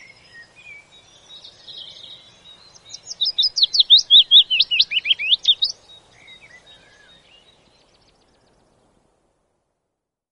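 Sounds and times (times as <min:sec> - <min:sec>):
willow warbler singing: 0:00.0 - 0:09.2.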